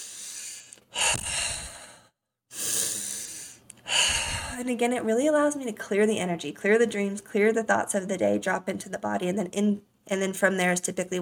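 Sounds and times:
person breathing in through the nose and out through the mouth: 0.0s - 4.7s
speech: 4.6s - 11.2s.

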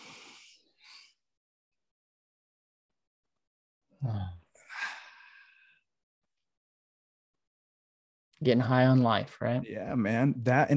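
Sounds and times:
people taking a deep breath together: 0.0s - 1.2s, 4.6s - 5.9s
speech: 4.0s - 4.4s, 8.4s - 10.7s.

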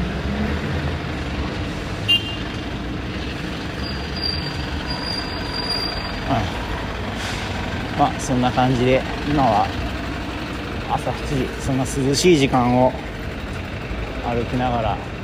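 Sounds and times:
heavy street traffic rumbling on the walk to the Louvre: 0.0s - 15.2s
truck passing: 0.0s - 15.2s
truck air-brake hiss: 7.1s - 7.6s
speech: 8.0s - 9.8s, 10.9s - 13.0s, 14.3s - 15.1s.

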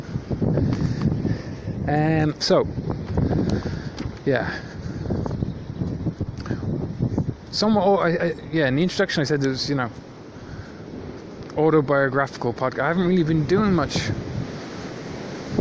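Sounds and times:
wind buffeting a microphone outdoors on a cold windy day: 0.0s - 15.5s
speech: 1.9s - 2.8s, 4.2s - 4.7s, 7.5s - 10.1s, 11.6s - 14.3s.

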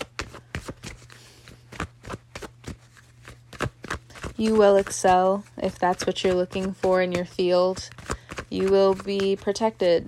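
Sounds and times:
cards shuffled and pulled from a deck during a card reading: 0.0s - 10.0s
speech: 4.4s - 10.0s.

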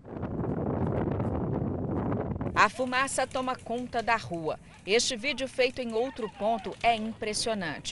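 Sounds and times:
strong wind roaring over a wildfire: 0.0s - 3.7s
wildfire crackling: 0.0s - 7.8s
speech: 2.6s - 7.8s.

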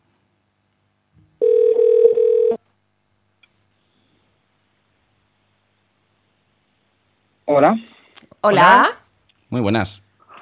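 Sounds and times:
telephone tone for an incoming call: 1.4s - 2.6s
speech: 7.5s - 10.0s.

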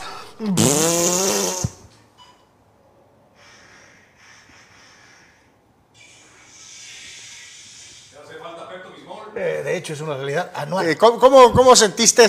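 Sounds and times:
long fart sound effect: 0.4s - 1.9s
speech: 9.8s - 12.2s.

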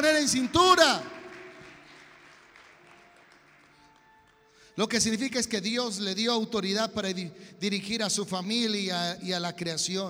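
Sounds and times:
audience applause during a sermon: 0.0s - 4.5s
speech: 0.2s - 1.2s, 4.8s - 10.0s.

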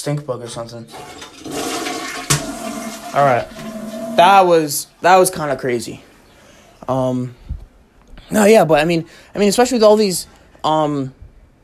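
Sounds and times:
speech: 0.0s - 1.6s, 3.1s - 6.1s, 6.9s - 7.4s, 8.3s - 11.6s
toilet flushing: 0.8s - 4.8s
clunk of toilet handle or valve: 0.9s - 4.2s.

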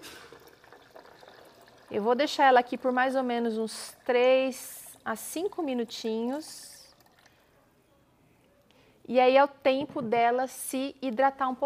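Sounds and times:
boiling water poured over dry cashew nuts while making cashew milk: 0.0s - 4.9s
speech: 1.9s - 6.7s, 9.1s - 11.6s.

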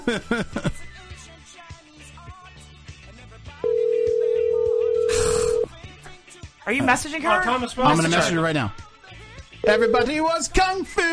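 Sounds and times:
laughter: 0.0s - 0.9s
speech: 0.1s - 0.8s, 6.7s - 8.8s, 9.6s - 11.1s
steady electronic outgoing phone call ringing tone: 3.6s - 5.7s, 9.6s - 10.2s.

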